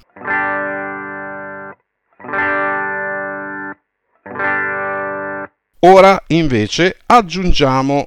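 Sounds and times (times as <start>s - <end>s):
clean electric guitar with no effects strumming chords: 0.0s - 5.6s
speech: 5.8s - 8.0s.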